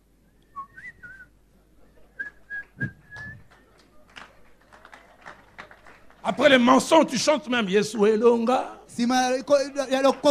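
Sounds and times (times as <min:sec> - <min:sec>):
murmur of noise: 0:00.0 - 0:10.2
person whistling a tune: 0:00.5 - 0:01.3, 0:02.2 - 0:03.5
speech: 0:06.4 - 0:10.2.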